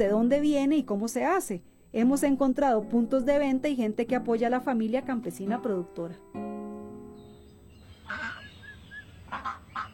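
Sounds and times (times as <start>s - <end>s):
speech: 0.0s - 6.4s
ducks quacking in a farmyard: 7.8s - 9.9s.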